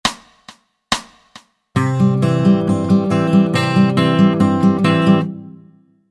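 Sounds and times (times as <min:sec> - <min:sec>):
Travis picking guitar alternating C and G notes: 0:01.8 - 0:06.0.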